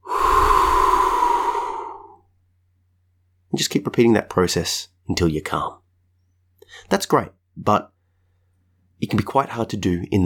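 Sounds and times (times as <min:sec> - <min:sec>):
slow calm breath: 0:00.0 - 0:02.3, 0:08.0 - 0:08.8
speech: 0:03.6 - 0:05.8, 0:06.7 - 0:07.9, 0:09.0 - 0:10.2.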